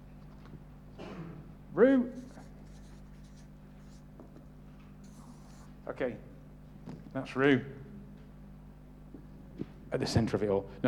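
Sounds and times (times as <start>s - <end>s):
steady low hum: 0.0s - 10.8s
speech: 1.8s - 2.2s, 5.9s - 6.3s, 7.1s - 7.8s, 10.0s - 10.8s
pen or pencil writing on a sheet of paper: 2.2s - 4.0s.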